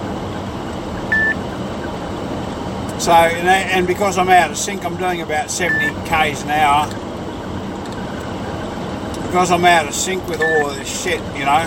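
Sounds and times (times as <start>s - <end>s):
low road and engine rumble while driving at about 70 km/h: 0.0s - 11.6s
short electronic beep from a phone-type timer: 1.0s - 1.4s
speech: 3.0s - 7.0s, 9.3s - 11.6s.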